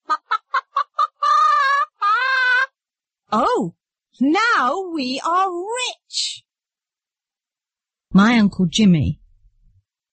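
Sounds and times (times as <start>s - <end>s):
chicken clucking: 0.0s - 2.6s
speech: 3.3s - 6.4s, 8.2s - 9.2s.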